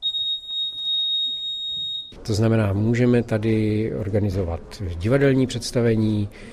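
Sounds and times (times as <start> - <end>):
high-pitched electronic warning tone of automatic folding theatre seats: 0.0 - 2.2
speech: 2.2 - 6.5.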